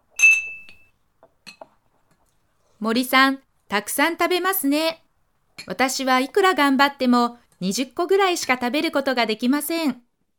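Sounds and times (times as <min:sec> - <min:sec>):
glasses clinking in a toast: 0:00.2 - 0:00.9
speech: 0:02.8 - 0:05.0, 0:05.6 - 0:10.0.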